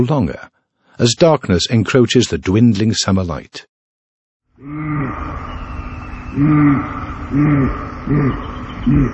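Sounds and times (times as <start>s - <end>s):
speech: 0.0s - 3.7s, 4.6s - 5.4s, 6.3s - 9.1s
male elk bellowing during rut: 4.6s - 9.1s
steady breathy rumbling: 4.6s - 9.1s.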